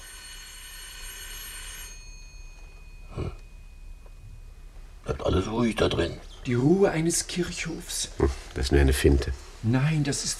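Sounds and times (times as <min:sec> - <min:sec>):
electric doorbell ringing: 0:00.0 - 0:04.5
faint lingering hum: 0:00.0 - 0:10.3
speech: 0:05.2 - 0:10.3.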